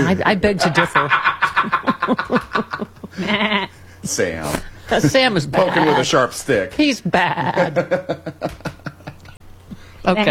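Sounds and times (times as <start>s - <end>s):
laughter: 0.0s - 4.0s, 7.0s - 9.4s
speech: 0.1s - 8.7s, 10.0s - 10.2s
sheep bleating: 3.2s - 3.7s.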